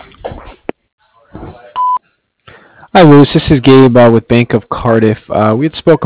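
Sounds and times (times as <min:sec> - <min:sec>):
single loud electronic beep: 0:01.8 - 0:02.0
recorded voice speaking: 0:02.9 - 0:06.0
speech: 0:02.9 - 0:06.0.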